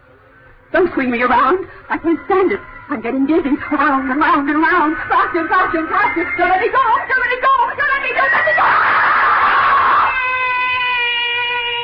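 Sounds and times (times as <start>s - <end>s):
speech: 0.8s - 9.0s
laughter: 0.8s - 10.3s
person screaming: 8.2s - 11.8s.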